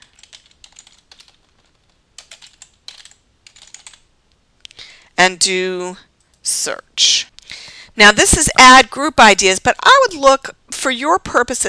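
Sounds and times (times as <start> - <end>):
typing on a computer keyboard into a search tool: 0.0 - 4.0
speech: 5.2 - 7.3, 8.0 - 11.6.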